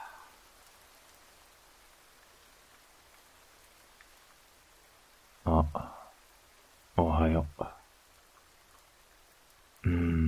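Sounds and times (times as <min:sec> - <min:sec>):
steady rain falling: 0:00.0 - 0:10.2
speech: 0:07.0 - 0:07.7.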